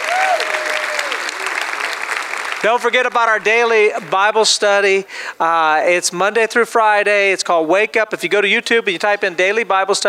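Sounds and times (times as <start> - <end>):
shouts: 0.0 - 1.5
crowd applauding: 0.0 - 4.3
speech: 2.6 - 10.0.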